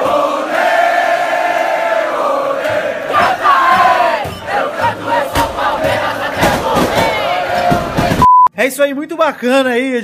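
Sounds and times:
large crowd of football fans chanting in unison: 0:00.0 - 0:08.2
speech: 0:08.7 - 0:10.0.

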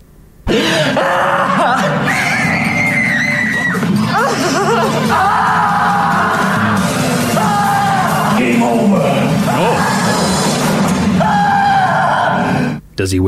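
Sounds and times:
harsh noisy background: 0:00.5 - 0:12.8
loud strained anguished screaming from a horror movie clip: 0:00.5 - 0:12.8
laughter: 0:00.6 - 0:08.6
speech: 0:13.0 - 0:13.2.

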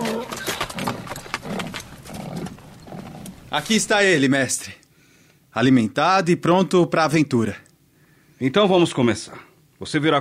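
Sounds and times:
donkey snort or whinny-like sound: 0:00.0 - 0:04.1
donkey hooves clopping on hard ground: 0:00.0 - 0:04.3
speech: 0:03.5 - 0:04.8, 0:05.6 - 0:07.6, 0:08.4 - 0:10.1.

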